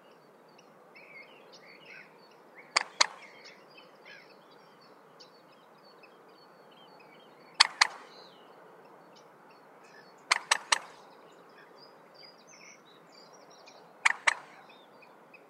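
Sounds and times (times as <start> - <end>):
common moorhen calling: 1.0 - 4.8, 7.5 - 8.5, 9.8 - 15.4.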